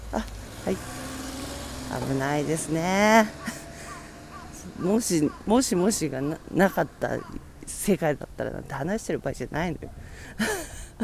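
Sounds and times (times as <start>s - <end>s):
small kei truck driving past: 0.0s - 7.7s
speech: 0.1s - 1.0s, 1.9s - 3.5s, 4.8s - 10.8s.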